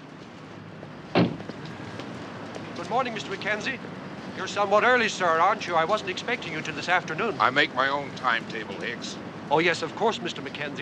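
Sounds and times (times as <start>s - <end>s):
car rear door opening: 1.2s - 1.5s
speech: 2.8s - 10.8s.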